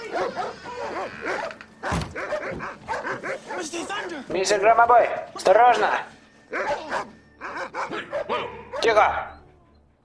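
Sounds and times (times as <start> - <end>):
furious dog barking in a house: 0.0 - 3.8, 6.5 - 9.1
speech: 4.3 - 7.1, 8.8 - 9.3.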